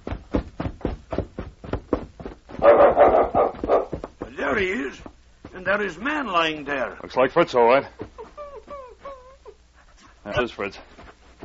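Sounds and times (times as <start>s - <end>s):
small dog barking: 2.6s - 4.0s
speech: 4.6s - 8.0s, 10.3s - 10.9s
laughter: 7.8s - 9.6s.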